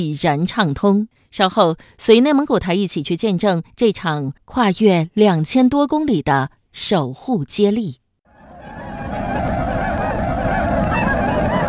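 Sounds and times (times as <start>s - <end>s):
speech: 0.0s - 8.0s
large flock of swans honking: 8.4s - 11.6s.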